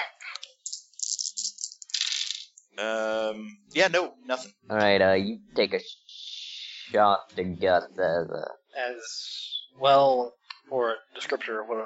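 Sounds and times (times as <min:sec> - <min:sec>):
dice rattling in a tabletop game roll: 0:00.7 - 0:02.5
speech: 0:02.8 - 0:06.0, 0:06.9 - 0:11.8.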